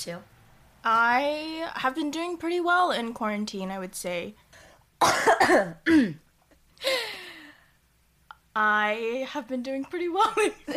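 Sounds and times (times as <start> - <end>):
speech: 0.0 - 4.4, 5.0 - 6.2, 8.6 - 10.7
person coughing harshly: 5.0 - 6.2.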